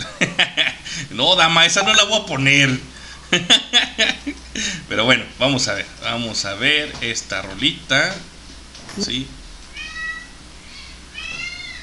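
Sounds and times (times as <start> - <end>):
laughter: 0.0 - 1.0, 3.3 - 4.8
low hum: 0.0 - 11.8
speech: 0.4 - 8.3, 9.0 - 9.4
cats meowing for food: 9.6 - 11.8.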